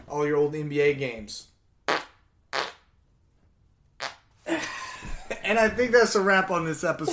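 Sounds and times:
speech: 0.1 - 1.5, 5.5 - 7.1
short raspy farts: 1.9 - 2.9, 4.0 - 4.3.

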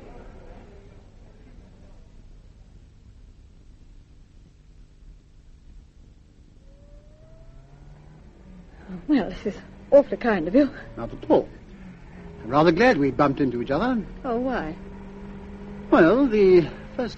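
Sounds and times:
parked car engine idling: 6.3 - 17.1
speech: 9.1 - 11.6, 12.5 - 14.9, 15.9 - 17.1.

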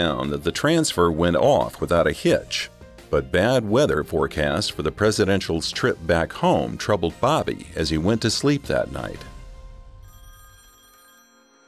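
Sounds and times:
speech: 0.0 - 9.3
telephone bell ringing in a continuous trill: 10.0 - 11.6.

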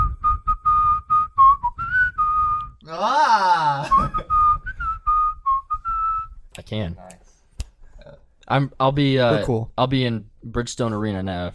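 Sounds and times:
person whistling a holiday-style melody: 0.0 - 2.8, 3.8 - 6.4
speech: 6.7 - 7.2, 8.5 - 11.5.

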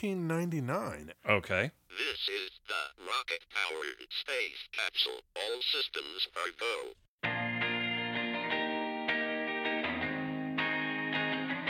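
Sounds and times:
speech: 0.0 - 7.0
Fender Coronado II electric guitar strumming chords with reverb: 7.2 - 11.6.

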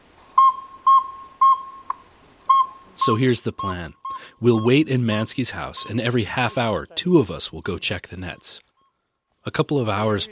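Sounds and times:
saw-whet owl call played from an audio lure: 0.4 - 3.1
speech: 3.0 - 8.6, 9.4 - 10.3.

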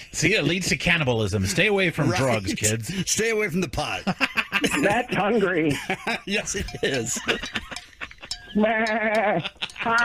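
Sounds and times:
speech: 0.2 - 7.6, 8.5 - 10.0
laughter: 1.4 - 3.1, 3.9 - 10.0
person imitating sheep bleat: 8.6 - 10.0.

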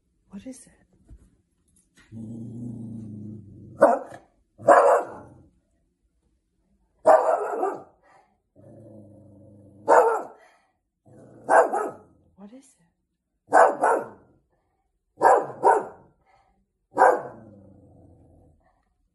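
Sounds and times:
speech: 0.4 - 1.0, 2.1 - 3.0, 3.8 - 4.8
dog growling: 2.0 - 3.8, 8.6 - 10.0, 11.0 - 11.6, 17.3 - 18.7
dog barking: 3.8 - 5.4, 7.0 - 8.0, 9.8 - 10.4, 11.4 - 12.2, 13.5 - 14.4, 15.2 - 16.2, 16.9 - 17.5.

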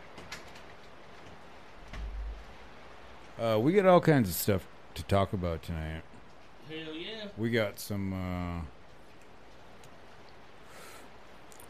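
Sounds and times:
noise: 0.0 - 11.6
faulty door rattling: 1.8 - 2.4
speech: 3.4 - 6.1, 6.7 - 8.8.

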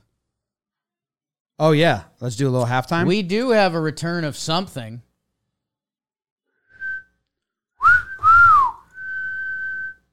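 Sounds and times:
speech: 1.6 - 5.1
person whistling a dog-calling whistle: 6.7 - 7.1, 7.8 - 10.1.

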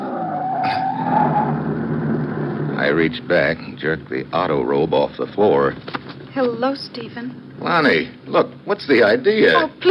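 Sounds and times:
sedan tires squealing while braking hard on a bumpy road: 0.0 - 4.0
low sedan engine rumble: 0.0 - 9.2
speech: 2.9 - 9.9.

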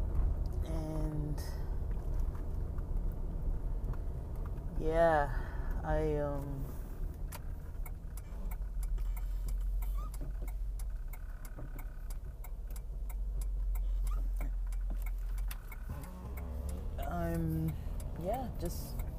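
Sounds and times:
car engine low rumble inside a moving car: 0.0 - 19.1
road noise inside a moving car: 0.0 - 19.1
speech: 4.8 - 6.8
rhythmic clicking like a turn signal: 7.7 - 19.1.

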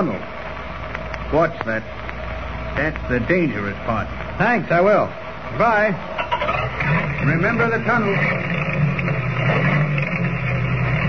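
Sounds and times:
constant hiss: 0.0 - 11.0
speech: 1.3 - 2.0, 2.8 - 8.7
ancient old car motor chugging on a winding road at night: 6.1 - 11.0.

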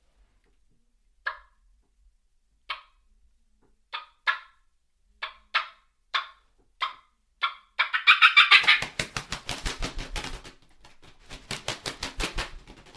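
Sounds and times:
turkey call clucks: 3.9 - 4.6, 5.2 - 9.0
wing flapping imitating two turkeys flying down: 8.4 - 12.9.

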